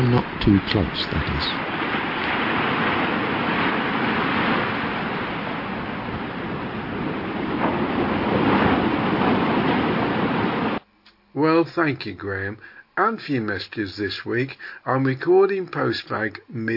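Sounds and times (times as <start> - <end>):
gusty wind: 0.0 - 10.8
rough sea waves crashing against sea wall: 0.0 - 10.8
speech: 0.1 - 1.8, 11.6 - 16.7.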